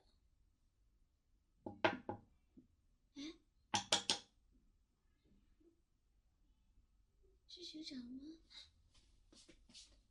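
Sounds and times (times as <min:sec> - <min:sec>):
knocking on a door: 0:01.7 - 0:02.2
speech: 0:07.7 - 0:08.4.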